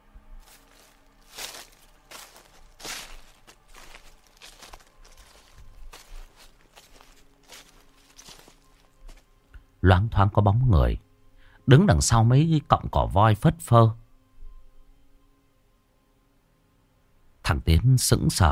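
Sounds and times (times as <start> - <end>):
footsteps rustling through grass: 0.4 - 9.3
speech: 9.8 - 11.1, 11.7 - 14.0, 17.5 - 18.5.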